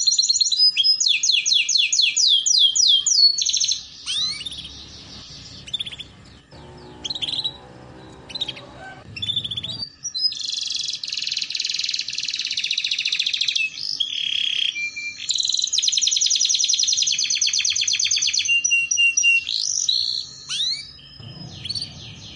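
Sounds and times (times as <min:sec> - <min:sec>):
canary song: 0:00.0 - 0:22.3
low rumbling noise: 0:04.2 - 0:09.9, 0:21.2 - 0:22.3.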